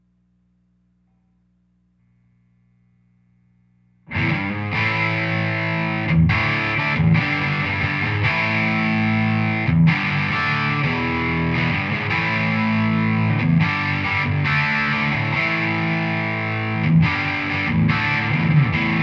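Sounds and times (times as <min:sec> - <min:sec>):
Telecaster electric guitar rock on bridge pickup with high grind: 0:04.1 - 0:19.0.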